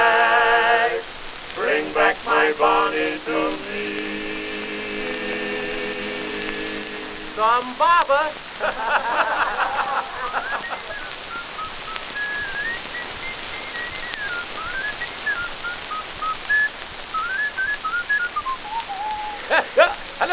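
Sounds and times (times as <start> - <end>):
steady hiss of noise: 0.0 - 20.3
speech: 7.4 - 9.6
laughter: 8.6 - 11.3, 19.0 - 20.3
person whistling a wandering melody: 10.2 - 19.6.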